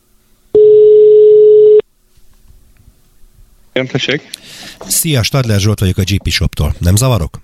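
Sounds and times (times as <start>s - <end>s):
steady electronic telephone ringback tone: 0.6s - 1.8s
speech: 3.8s - 7.4s.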